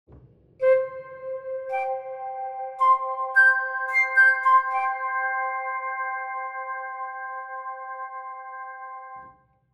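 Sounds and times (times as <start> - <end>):
tall flute sound effect: 0.6 - 7.1.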